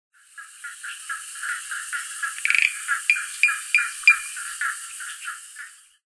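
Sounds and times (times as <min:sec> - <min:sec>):
Spinomantis fimbriatus frog calling: 0:01.1 - 0:04.8.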